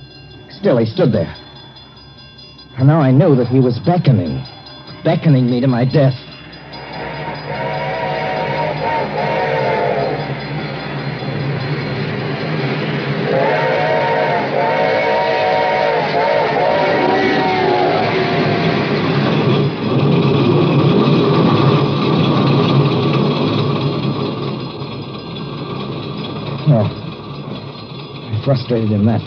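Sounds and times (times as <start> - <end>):
approaching train rumbling: 0.0 - 29.2
speech: 0.6 - 1.4, 2.8 - 6.2, 28.5 - 29.2
long wailing train whistle blasts: 6.9 - 10.4, 13.2 - 18.6.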